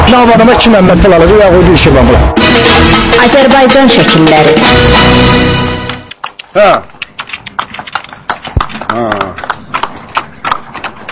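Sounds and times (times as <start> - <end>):
speech: 0.1 - 5.7, 6.6 - 6.9, 8.9 - 9.5
working horse hooves clip-clopping on a village road in rural Azerbaijan: 2.5 - 11.1.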